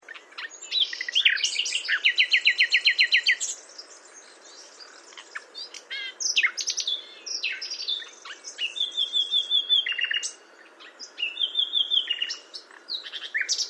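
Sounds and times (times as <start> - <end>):
Common nightingale Luscinia megarhynchos song: 0.0 - 13.6
faint background hiss: 0.0 - 13.6.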